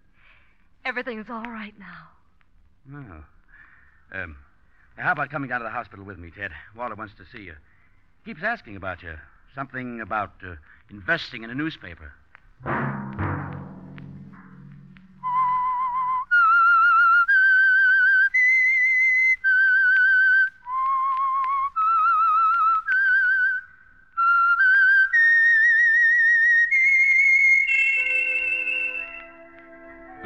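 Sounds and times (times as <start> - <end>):
speech: 0.9 - 2.2, 2.8 - 3.4, 4.1 - 13.0
brief thud: 12.6 - 15.4
lone whistler whistling a slow eerie theme melody: 15.2 - 29.6.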